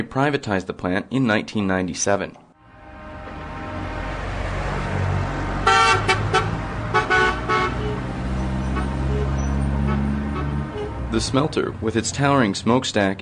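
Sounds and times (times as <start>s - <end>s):
speech: 0.0s - 2.4s, 11.2s - 13.2s
truck horn honks: 2.6s - 11.5s
heavy trucks rumbling through a town near a smelter: 2.6s - 13.2s.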